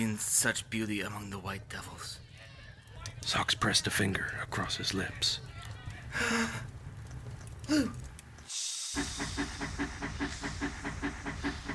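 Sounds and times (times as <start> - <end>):
speech: 0.2 - 2.3, 3.2 - 6.8, 7.7 - 8.1, 9.0 - 10.7
steam locomotive chuffing puffs: 6.0 - 8.5.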